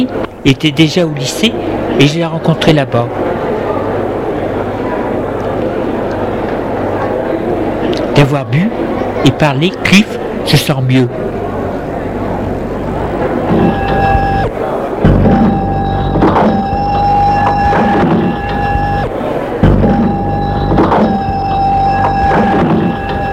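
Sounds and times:
speech: 0:00.0 - 0:03.2, 0:08.2 - 0:11.2
busy café room murmur: 0:00.0 - 0:23.3
café door opening: 0:13.3 - 0:14.5, 0:15.1 - 0:23.3.

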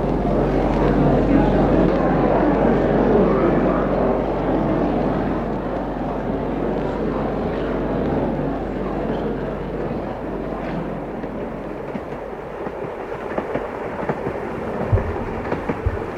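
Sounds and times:
train rolling along the rails: 0:00.0 - 0:16.1
train wheels clacking over rail joints: 0:10.5 - 0:16.1.

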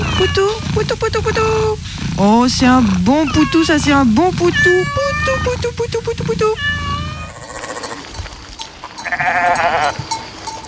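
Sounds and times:
sheep shuffling: 0:00.0 - 0:10.6
speech: 0:00.2 - 0:06.9
flock of sheep bleating in alpine pasture: 0:03.1 - 0:08.1, 0:09.0 - 0:10.0.

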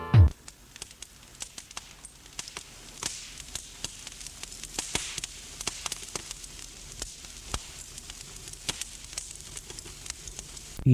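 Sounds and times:
fire crackling in a fireplace: 0:00.2 - 0:10.9.

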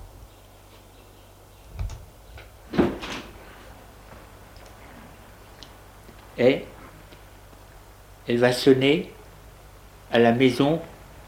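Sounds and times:
door opening thump: 0:02.7 - 0:03.3
speech: 0:06.4 - 0:06.7, 0:08.3 - 0:09.2, 0:10.1 - 0:10.9.

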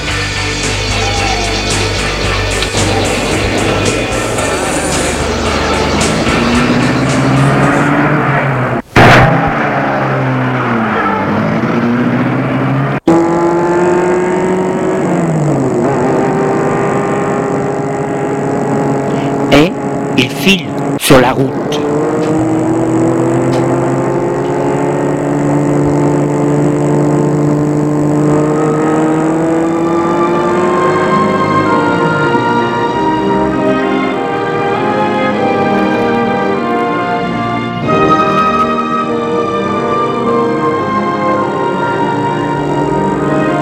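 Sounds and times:
loud car engine starting, revving and accelerating through gears: 0:00.0 - 0:43.6.

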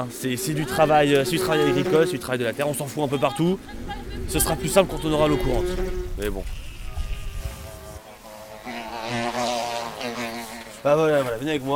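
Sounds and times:
speech: 0:00.0 - 0:06.6, 0:10.8 - 0:11.7
low rumbling noise: 0:00.0 - 0:08.2
honey-making flies buzzing at an apiary: 0:00.0 - 0:11.7.

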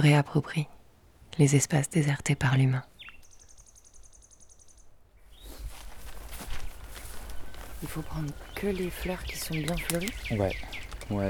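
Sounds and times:
speech: 0:00.0 - 0:02.9, 0:07.8 - 0:11.2
nocturnal bird giving a high rapid trill: 0:03.0 - 0:05.6, 0:07.3 - 0:11.2
rustling and crunching footsteps: 0:05.3 - 0:11.2.

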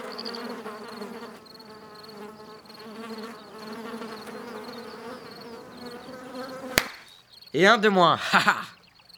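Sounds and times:
mosquito whining buzz: 0:00.0 - 0:07.1
sharp slap killing a mosquito: 0:06.7 - 0:07.2
speech: 0:07.6 - 0:08.7
laughter: 0:07.6 - 0:08.8.

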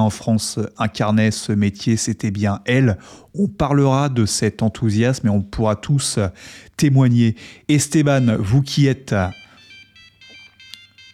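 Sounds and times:
speech: 0:00.0 - 0:09.4
mobile phone ringtone with a bright electronic melody: 0:08.2 - 0:11.1.

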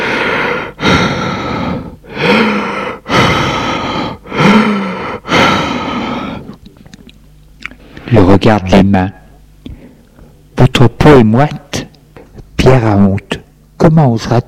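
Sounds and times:
heavy labored breathing from a patient during a medical examination: 0:00.0 - 0:06.6
speech: 0:08.1 - 0:09.2, 0:10.7 - 0:11.8, 0:12.6 - 0:14.4.

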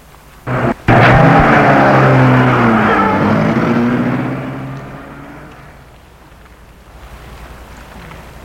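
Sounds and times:
car engine cranking, starting and accelerating away: 0:00.5 - 0:06.0.

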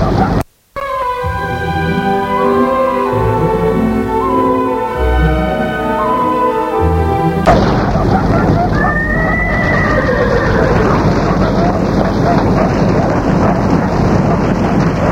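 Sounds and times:
steady roar of heavy rain or storm: 0:00.0 - 0:15.0
faint hoof clatter: 0:07.4 - 0:15.0
horse whinnying: 0:08.4 - 0:11.8.

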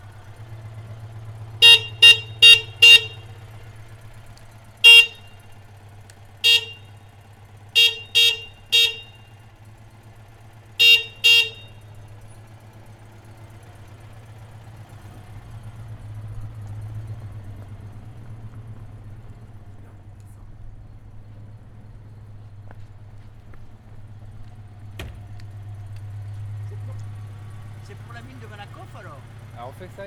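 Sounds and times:
low rumble of an idling engine: 0:00.0 - 0:30.0
car horn honking in short sharp blasts: 0:01.3 - 0:09.6, 0:10.4 - 0:12.2
speech: 0:28.0 - 0:30.0.

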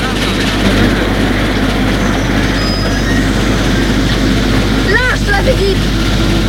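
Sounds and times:
train wheels rolling out of the outskirts of Rome: 0:00.0 - 0:06.4
brief high metallic squeal of train: 0:01.6 - 0:05.2.

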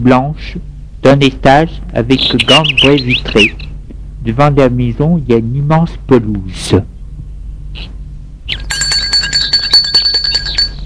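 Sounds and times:
speech: 0:00.0 - 0:06.9
bell ringing at the gate of a lakeside villa: 0:08.5 - 0:10.8.

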